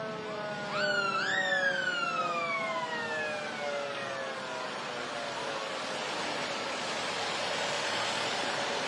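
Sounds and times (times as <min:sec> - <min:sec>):
ambulance siren wailing in a holiday parade: 0:00.0 - 0:08.7.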